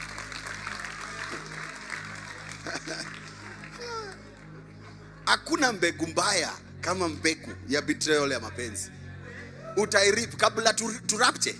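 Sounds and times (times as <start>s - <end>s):
cheers: 0.0s - 2.5s
crowd clapping: 0.0s - 4.6s
laughter: 2.2s - 5.8s
speech: 5.3s - 9.0s, 9.8s - 11.5s.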